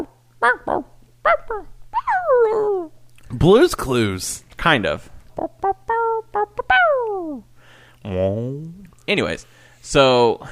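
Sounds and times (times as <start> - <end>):
person imitating dog barking and whining: 0.0 - 3.0, 5.4 - 7.5, 8.1 - 9.0
faint low hum: 0.0 - 10.5
speech: 0.4 - 0.9, 1.5 - 1.8, 3.4 - 5.2, 8.1 - 10.5.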